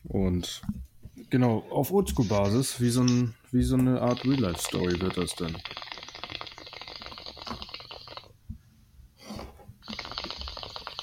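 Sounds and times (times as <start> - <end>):
speech: 0.2 - 5.9
liquid bubbling: 4.0 - 8.4, 9.8 - 11.0.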